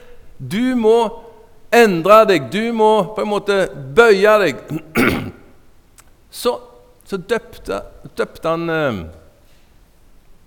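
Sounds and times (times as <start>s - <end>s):
speech: 0.4s - 5.3s, 6.3s - 9.2s
person clearing throat: 4.7s - 5.6s.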